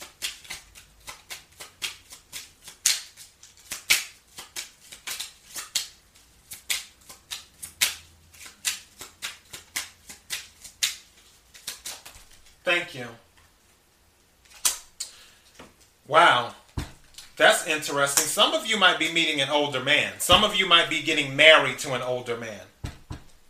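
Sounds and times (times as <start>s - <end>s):
playing cards shuffled and drawn during a card reading: 0.0s - 12.6s, 14.4s - 15.9s, 16.6s - 18.4s, 20.2s - 21.9s
speech: 12.7s - 13.3s, 16.1s - 16.6s, 17.4s - 22.7s.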